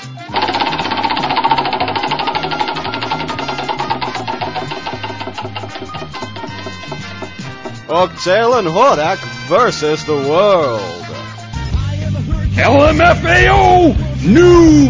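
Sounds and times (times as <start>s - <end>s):
prize wheel spinning with rapid rhythmic ticking clatter: 0.2s - 9.0s
speech: 7.9s - 11.0s, 12.6s - 14.8s.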